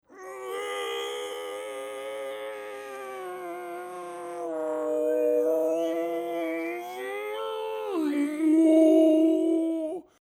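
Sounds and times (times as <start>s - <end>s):
throat singing: 2.8s - 10.1s.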